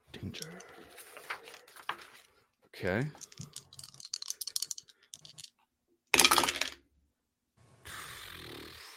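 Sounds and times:
speech: 0:00.2 - 0:00.6, 0:02.8 - 0:03.4
dice rattling in a cup or hand during a tabletop role-playing game: 0:03.2 - 0:05.6, 0:06.2 - 0:06.8.

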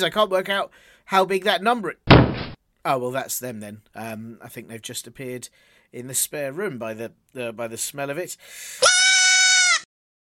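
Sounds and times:
speech: 0:00.0 - 0:02.2, 0:02.8 - 0:09.1
male goat bleating: 0:08.8 - 0:09.9.

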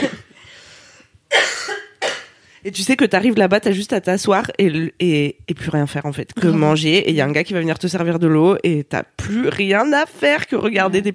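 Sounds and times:
person coughing: 0:00.0 - 0:00.4, 0:01.3 - 0:02.4
speech: 0:02.6 - 0:11.1.

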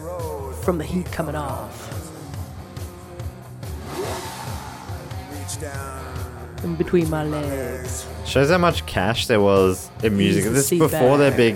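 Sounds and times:
speech: 0:00.7 - 0:02.1, 0:05.5 - 0:11.5
Lamborghini engine revving: 0:02.0 - 0:07.9.

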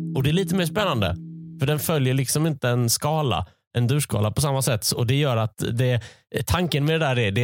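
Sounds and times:
electronic podcast jingle of three chords from minor to major: 0:00.1 - 0:01.9
speech: 0:00.3 - 0:07.4.

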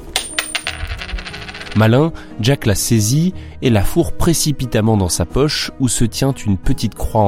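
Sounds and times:
coin falling and clattering onto a hard counter: 0:00.1 - 0:01.8
speech: 0:01.8 - 0:07.2.

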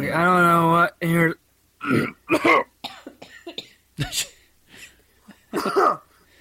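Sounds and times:
speech: 0:00.1 - 0:02.6
sick people coughing: 0:01.8 - 0:04.4, 0:05.5 - 0:06.3
throat clearing: 0:01.8 - 0:04.4, 0:05.6 - 0:06.3.

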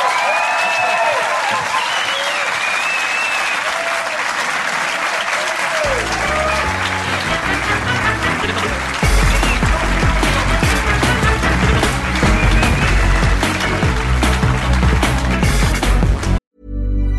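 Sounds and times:
scattered whoops from a crowd: 0:00.0 - 0:07.5
dense audience applause from a large crowd: 0:00.0 - 0:16.4
low music: 0:05.9 - 0:17.1.

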